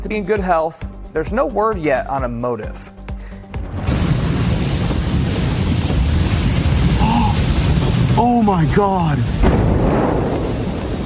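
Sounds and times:
speech: 0.0 - 3.0, 8.2 - 10.1
massive fuel tank explosion roaring: 3.6 - 11.0.

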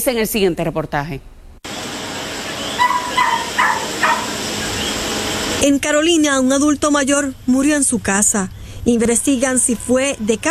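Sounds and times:
speech: 0.0 - 1.4, 5.6 - 10.4
short high-pitched dog barks at a house: 2.4 - 5.2.

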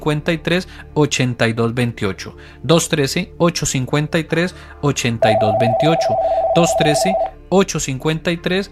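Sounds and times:
speech: 0.0 - 8.7
telephone ringing with an incoming call, warbling electronic trill: 5.2 - 7.3.

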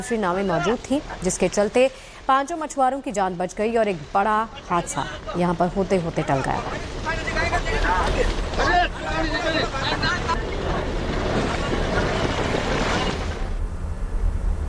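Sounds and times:
speech: 0.0 - 10.5
steady wind on open water: 0.0 - 14.6
agitated voices calling out on open water: 4.3 - 10.8.

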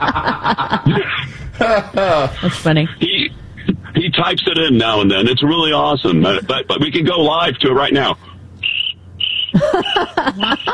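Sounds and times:
speech: 0.0 - 3.0, 4.2 - 8.3, 9.5 - 10.7
laughter: 0.0 - 4.0, 9.5 - 10.7
crickets chirping: 8.6 - 10.7.

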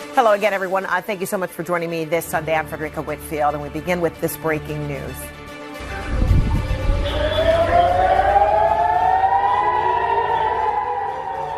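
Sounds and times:
speech: 0.2 - 5.4
low rumble: 5.8 - 9.5
air raid sirens wailing: 5.8 - 11.5.

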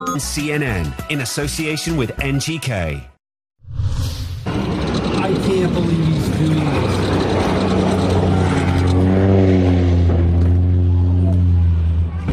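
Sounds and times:
speech: 0.0 - 3.1, 5.2 - 6.0
seaplane propeller engine droning during an emergency landing: 4.3 - 12.2.

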